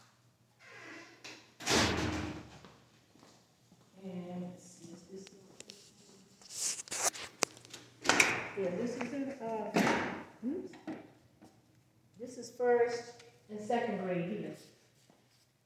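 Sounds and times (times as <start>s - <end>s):
door hauled open with a rattling rush: 1.6s - 2.6s
people talking: 4.0s - 5.8s, 8.6s - 10.8s, 12.2s - 14.7s.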